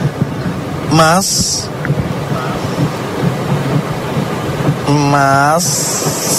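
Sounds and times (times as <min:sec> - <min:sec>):
heavy torrential rain pouring down: 0:00.0 - 0:06.3
speech: 0:00.9 - 0:01.7, 0:04.9 - 0:06.3.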